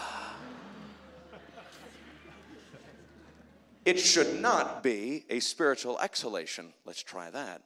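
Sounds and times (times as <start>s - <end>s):
group of people inhaling together on a count of three: 0.0s - 1.3s
laughter: 0.0s - 3.8s
speech: 3.9s - 7.6s.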